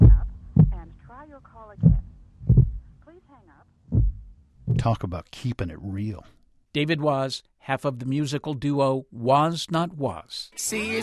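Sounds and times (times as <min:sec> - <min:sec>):
deep heartbeat thumps: 0:00.0 - 0:01.0, 0:01.7 - 0:02.9, 0:03.9 - 0:05.0
speech: 0:01.3 - 0:02.1, 0:03.1 - 0:04.1, 0:04.7 - 0:11.0.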